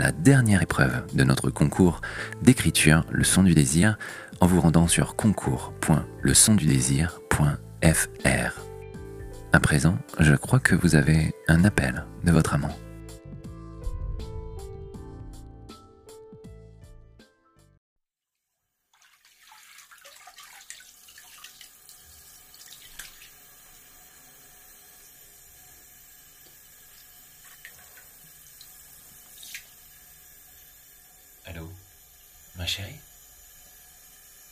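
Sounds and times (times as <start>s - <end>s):
speech: 0.0s - 8.7s, 9.5s - 12.8s
water running into a bathtub: 18.4s - 34.5s.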